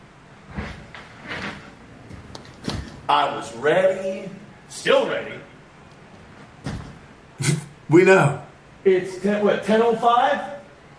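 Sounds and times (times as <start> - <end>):
speech: 3.1 - 5.5, 7.9 - 10.5
door being handled and swung: 6.2 - 7.1
soft door thumps: 6.6 - 7.0.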